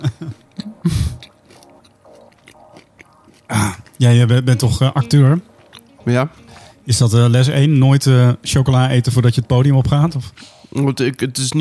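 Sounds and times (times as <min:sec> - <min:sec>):
person sipping and swallowing water with wet slurps: 0:00.4 - 0:06.9
speech: 0:04.0 - 0:11.5.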